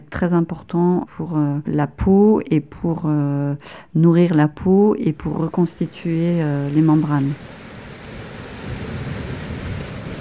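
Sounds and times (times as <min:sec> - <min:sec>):
speech: 0:00.2 - 0:07.6
low wind rumble on a beach foreshore at low tide in Finistère, Brittany: 0:04.6 - 0:10.1
faint steady surf on a beach foreshore at low tide in Finistère, Brittany: 0:05.5 - 0:10.1.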